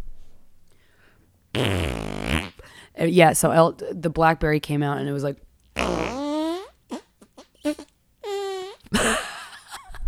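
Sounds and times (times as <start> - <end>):
person blowing a raspberry imitating a fart: 1.6 - 2.7, 5.8 - 9.2
speech: 3.0 - 6.0.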